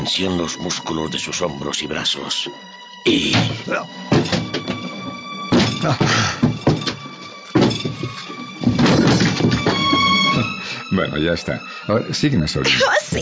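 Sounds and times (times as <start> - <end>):
speech: 0.0 - 4.4, 5.8 - 6.4, 11.0 - 13.2
door being forced open with heavy thuds and rattling: 3.3 - 10.4.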